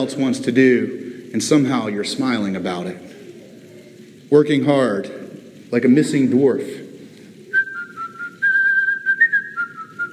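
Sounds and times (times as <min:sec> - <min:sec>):
speech: 0:00.0 - 0:03.2, 0:04.3 - 0:06.8
person whistling a cheerful tune: 0:07.5 - 0:10.1.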